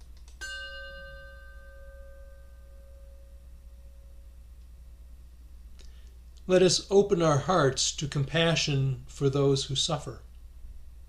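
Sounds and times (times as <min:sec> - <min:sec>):
low steady hum: 0:00.0 - 0:11.0
chime ringing with bright overtones: 0:00.4 - 0:04.3
speech: 0:06.5 - 0:10.3.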